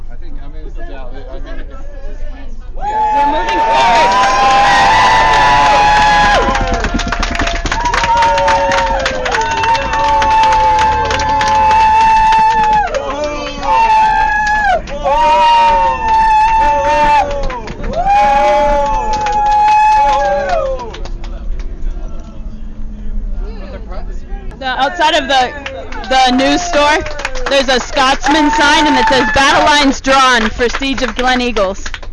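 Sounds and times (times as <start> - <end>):
protest crowd cheering and roaring: 2.8 - 21.2, 24.8 - 30.5
speech: 28.0 - 31.9.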